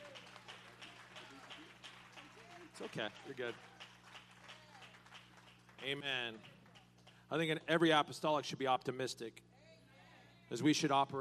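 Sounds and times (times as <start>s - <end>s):
audience clapping hands in praise in a steady rhythm: 0.0s - 7.6s
speech: 2.8s - 3.8s, 5.8s - 6.5s, 7.3s - 9.5s, 10.5s - 11.1s.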